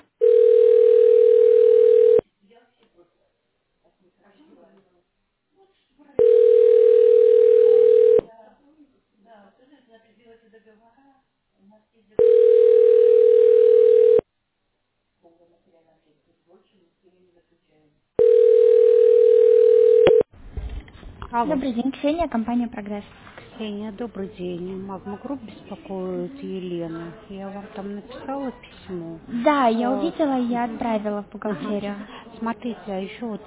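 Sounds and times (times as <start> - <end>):
telephone ringing tone while a call is being transferred: 0.2 - 2.2, 6.2 - 8.3, 12.2 - 14.2, 18.2 - 20.3
speech: 21.4 - 33.4.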